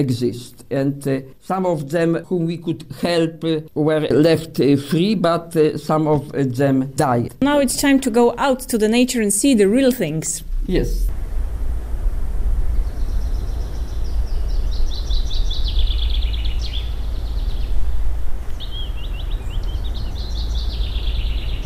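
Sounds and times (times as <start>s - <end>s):
speech: 0.0s - 11.2s
steady low rumble of wind or noise: 7.4s - 21.6s
birds singing high trilling phrases on a nature reserve trail: 12.7s - 21.6s.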